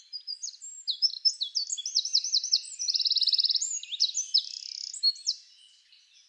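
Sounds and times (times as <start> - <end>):
Eurasian wren Troglodytes troglodytes singing: 0.6 - 5.3.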